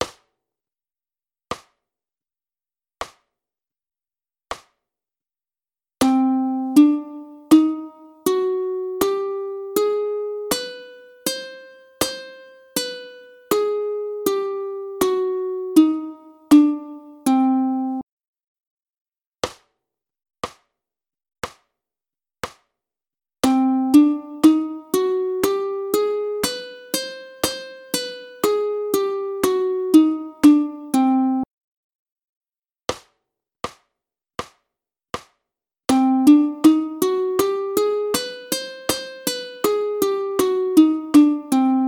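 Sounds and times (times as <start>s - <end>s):
ukulele playing a gypsy minor scale: 6.0s - 18.0s, 23.4s - 31.5s, 35.9s - 41.8s.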